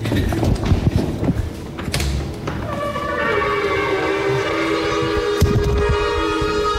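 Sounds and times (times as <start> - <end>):
rumbling and clatter: 0.0 - 2.2
group of ram's horn shofars blowing at a Unitarian church: 2.6 - 6.7.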